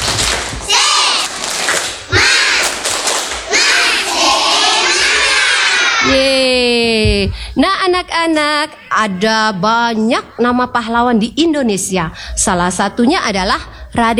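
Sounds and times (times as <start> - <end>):
group of children clapping in a quick steady rhythm: 0.0 - 6.0
group of children chanting a spirit clap: 0.6 - 1.4, 2.1 - 6.2
speech: 7.2 - 14.1.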